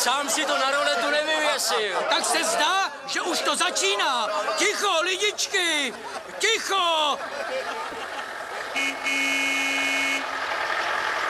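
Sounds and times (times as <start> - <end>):
speech: 0.0 - 8.2, 8.9 - 9.6
steady street noise: 0.0 - 11.2
laughter: 0.1 - 8.9
car driven by a building caretaker pulling out toward a house: 7.8 - 11.2
car horn toot and sustained honk: 8.7 - 10.4.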